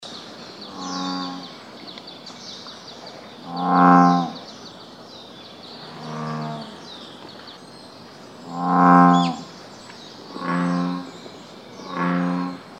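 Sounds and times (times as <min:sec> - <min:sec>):
American bullfrog calling deep moo-like notes: 0:00.7 - 0:01.5, 0:03.4 - 0:04.4, 0:05.8 - 0:06.8, 0:08.4 - 0:09.5, 0:10.3 - 0:11.1, 0:11.8 - 0:12.7.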